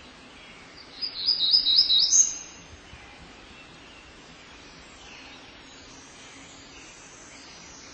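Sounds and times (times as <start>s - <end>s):
Black-throated gray warbler buzzy song: 0.0s - 7.9s.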